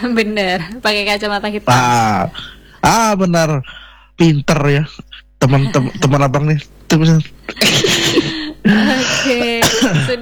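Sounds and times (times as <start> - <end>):
speech: 0.0 - 10.2
laughter: 5.4 - 10.2
person coughing harshly: 7.5 - 10.2.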